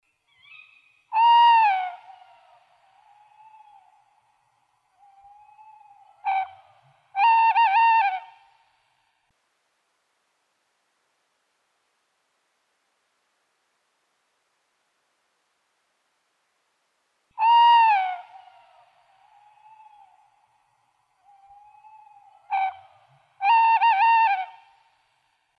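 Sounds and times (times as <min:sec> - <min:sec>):
tawny owl in Valsolda: 0:00.1 - 0:08.6, 0:17.4 - 0:25.0.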